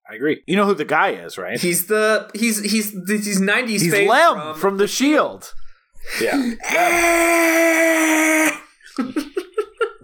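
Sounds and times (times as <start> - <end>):
speech: 0.1 - 9.4
man screaming: 6.6 - 8.7.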